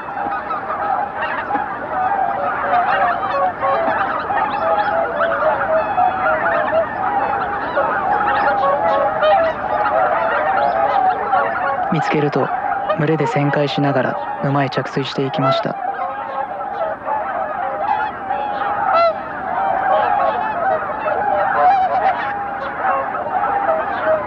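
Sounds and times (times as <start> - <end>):
lone greater white-fronted goose honking: 0.0 - 24.2
speech: 12.0 - 15.9.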